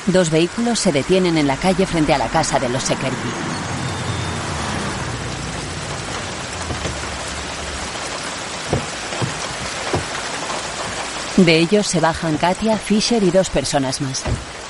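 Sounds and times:
speech: 0.0s - 3.7s, 11.4s - 14.5s
heavy rain falling at night: 0.0s - 14.6s
soft knocks: 5.9s - 11.1s.

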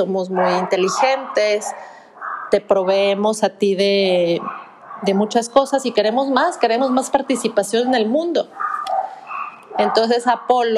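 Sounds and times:
speech: 0.0s - 9.0s, 9.8s - 10.7s
dog barking: 0.3s - 2.6s, 4.3s - 5.4s, 6.5s - 10.7s.

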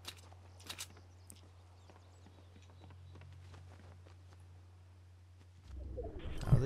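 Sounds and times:
video game character footsteps: 0.0s - 6.0s
low electronic hum: 4.5s - 6.6s.

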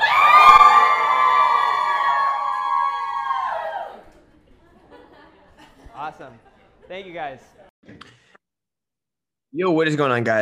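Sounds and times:
live audience at a lecture screaming and cheering: 0.0s - 4.2s
laughter: 4.0s - 7.7s
speech: 7.0s - 7.6s, 9.6s - 10.4s.

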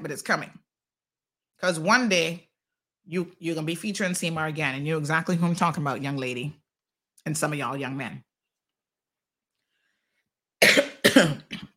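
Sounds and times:
speech: 0.0s - 0.6s, 1.6s - 2.5s, 3.1s - 6.6s, 7.2s - 8.3s
person coughing: 10.6s - 11.7s.

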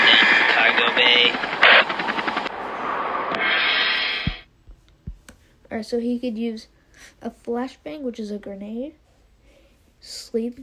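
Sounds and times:
helicopter rotor chopping: 0.0s - 4.4s
roaring whoosh: 1.3s - 4.4s
speech: 5.8s - 9.0s, 10.0s - 10.6s.

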